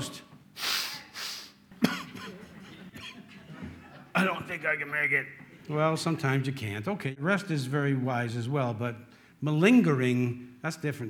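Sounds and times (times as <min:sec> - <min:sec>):
sniffling: 0:00.6 - 0:01.6
laughter: 0:01.8 - 0:04.6
speech: 0:04.2 - 0:11.0.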